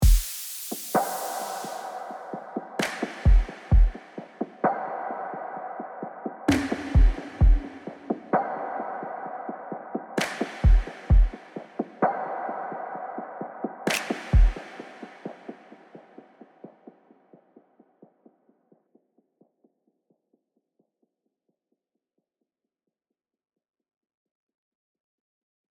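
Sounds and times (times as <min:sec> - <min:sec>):
electronic drums and percussion: 0:00.0 - 0:17.0.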